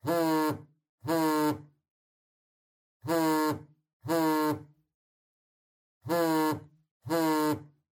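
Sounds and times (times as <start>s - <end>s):
cell phone vibrating on a table: 0.0s - 1.8s, 3.0s - 4.9s, 6.0s - 7.9s.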